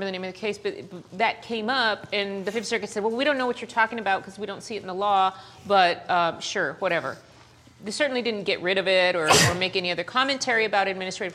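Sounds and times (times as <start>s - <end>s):
speech: 0.0s - 11.3s
single sharp loud sneeze: 9.2s - 9.8s.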